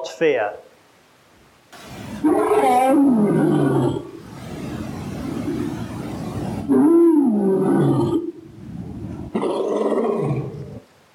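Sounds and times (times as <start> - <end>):
speech: 0.0 - 0.7
lion roaring: 2.2 - 4.3, 6.6 - 10.9.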